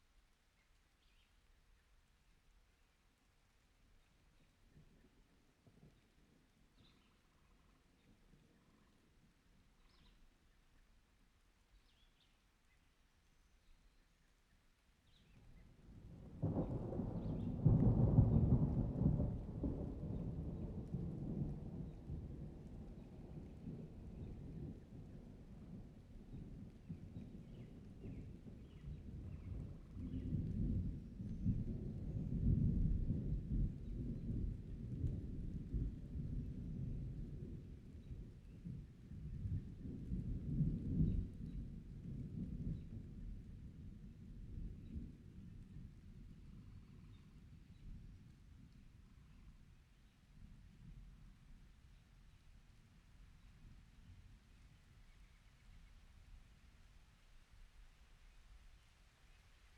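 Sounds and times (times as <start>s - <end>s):
summer rain: 0.0s - 59.7s
summer thunder: 16.2s - 25.4s, 26.4s - 45.3s.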